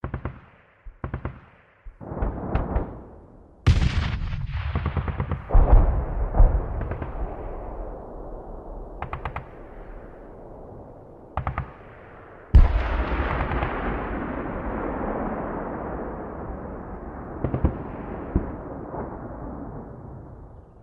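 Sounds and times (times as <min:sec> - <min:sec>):
bombardment explosions: 0:00.0 - 0:20.8.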